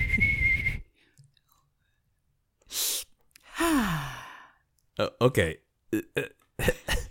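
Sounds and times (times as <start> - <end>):
person imitating a whistling tea kettle with a steady high whistle: 0.0 - 0.9
person sighing ah sliding downward: 2.7 - 4.6
speech: 3.6 - 4.1, 5.0 - 7.0.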